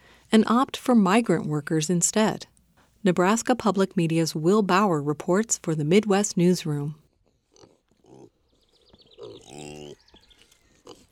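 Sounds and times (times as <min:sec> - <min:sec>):
speech: 0:00.3 - 0:07.0
Kunekune pigs grunting and squealing on a pig farm near Adair Iowa: 0:07.2 - 0:11.0
faint high chirping: 0:08.4 - 0:11.0.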